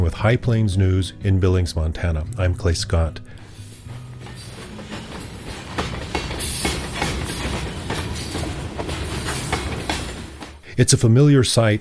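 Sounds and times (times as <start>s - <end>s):
speech: 0.1s - 3.4s, 10.8s - 11.7s
freight train wheels clacking over rail joints: 3.8s - 10.6s.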